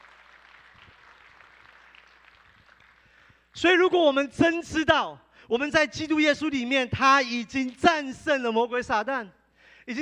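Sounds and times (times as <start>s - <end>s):
audience applauding to give glory to God: 0.0s - 3.3s
speech: 3.6s - 10.0s.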